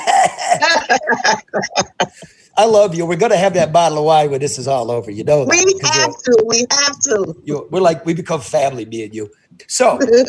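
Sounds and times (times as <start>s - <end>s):
person coughing roughly: 0.0s - 2.3s
laughter: 0.0s - 6.2s, 7.1s - 9.2s
speech: 0.6s - 2.0s, 2.6s - 10.2s.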